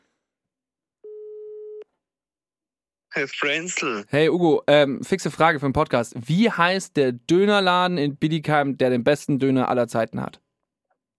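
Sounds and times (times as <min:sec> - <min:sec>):
telephone call tone beep: 0:01.0 - 0:01.8
speech: 0:03.2 - 0:10.4.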